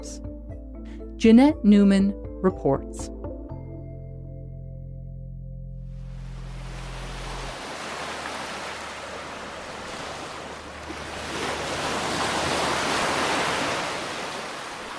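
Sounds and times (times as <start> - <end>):
speech: 1.2 - 3.1
ocean waves rolling onto a beach: 6.0 - 14.9.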